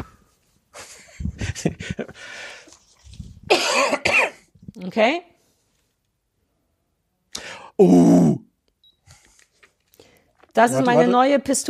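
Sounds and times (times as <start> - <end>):
speech: 1.6 - 2.5, 4.8 - 5.3, 7.8 - 8.4, 10.6 - 11.6
person coughing harshly on request: 3.5 - 4.5.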